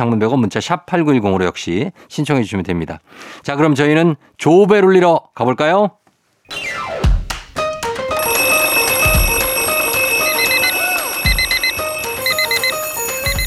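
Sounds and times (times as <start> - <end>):
speech: 0.0 - 6.0
sustained musical bed: 6.5 - 13.4
electronic alarm clock beeping: 8.2 - 13.4.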